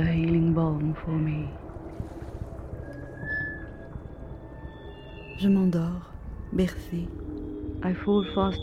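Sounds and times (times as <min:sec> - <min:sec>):
speech: 0:00.0 - 0:02.2, 0:05.4 - 0:08.6
water lapping against a boat hull: 0:00.0 - 0:07.7.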